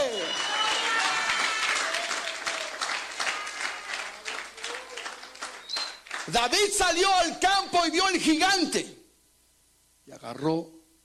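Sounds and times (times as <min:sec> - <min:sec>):
faint voices and cheers: 0:00.0 - 0:06.0
crowd applauding steadily: 0:00.0 - 0:07.1
speech: 0:06.3 - 0:09.0, 0:10.1 - 0:10.8.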